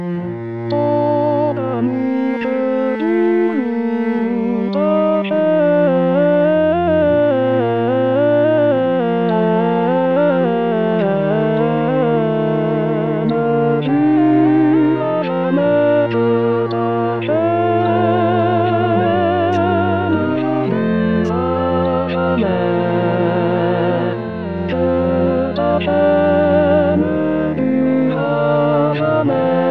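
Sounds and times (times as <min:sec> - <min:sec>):
tender voice: 0:00.2 - 0:29.6.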